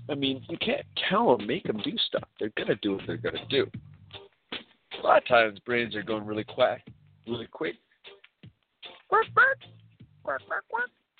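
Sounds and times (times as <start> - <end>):
speech: 0.1 - 4.2, 5.0 - 7.8, 9.1 - 11.0
person imitating duck quacks: 9.1 - 9.6, 10.3 - 11.0.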